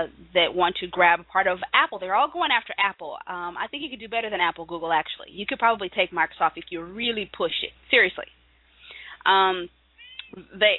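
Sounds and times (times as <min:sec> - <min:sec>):
speech: 0:00.0 - 0:08.4, 0:09.2 - 0:10.7
house cat meowing loudly in high-pitched cries: 0:10.0 - 0:10.4.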